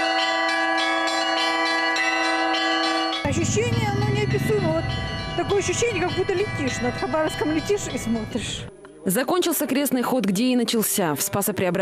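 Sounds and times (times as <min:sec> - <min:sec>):
church bells from a mobile belfry pealing on the central embankment in Khabarovsk: 0:00.0 - 0:08.8
speech: 0:03.4 - 0:04.0, 0:04.7 - 0:11.7.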